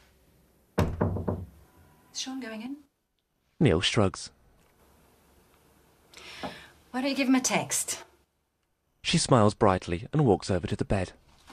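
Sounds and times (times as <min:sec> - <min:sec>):
bedroom door closing with a dull woody thump: 0:00.8 - 0:01.6
speech: 0:02.2 - 0:02.9, 0:03.6 - 0:04.4, 0:06.4 - 0:08.1, 0:09.1 - 0:11.2.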